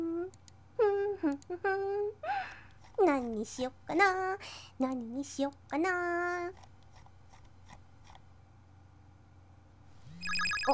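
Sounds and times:
speech: 1.3 - 6.7
tablet incoming call ringtone with chiming tones: 10.1 - 10.7.

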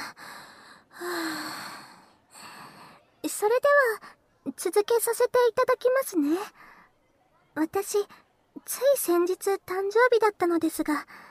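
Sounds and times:
nervous speaker's deep breath: 0.0 - 3.0
speech: 3.3 - 6.6, 7.6 - 11.2.

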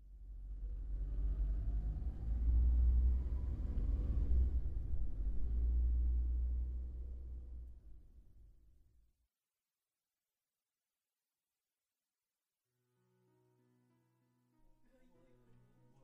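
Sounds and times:
car engine rumble while driving: 0.1 - 8.2.

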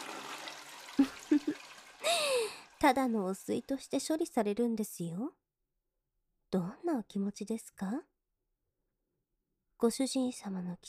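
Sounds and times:
toilet flushing: 0.0 - 3.9
speech: 2.8 - 5.4, 6.5 - 8.1, 9.8 - 10.8.

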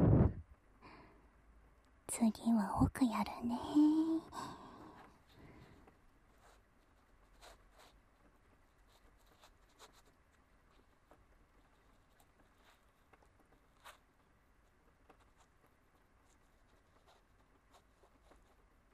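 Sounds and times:
soft steady rain: 0.5 - 18.9
speech: 2.1 - 4.6
scattered scratches and ticks: 5.0 - 18.9.

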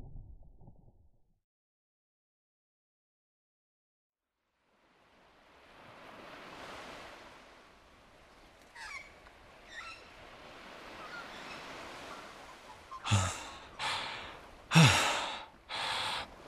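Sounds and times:
ocean waves crashing: 4.8 - 8.6, 9.4 - 16.4.

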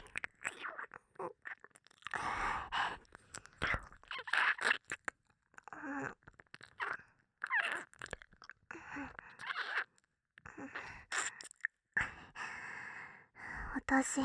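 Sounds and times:
wet mouth sounds of ASMR ear licking: 0.0 - 11.8
breaths: 2.2 - 3.6, 8.7 - 9.4, 10.5 - 14.2.

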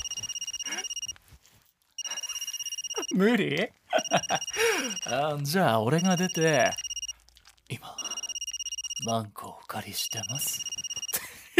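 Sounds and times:
phone ringing with a trilling electronic tone: 0.0 - 1.1, 2.0 - 3.3, 4.0 - 7.1, 8.0 - 9.1, 10.0 - 11.2
speech: 3.1 - 6.8, 9.0 - 10.7.

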